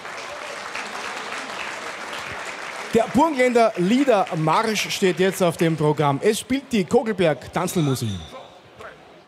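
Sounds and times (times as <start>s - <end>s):
audience applause at an event: 0.0s - 6.1s
speech: 2.9s - 8.3s.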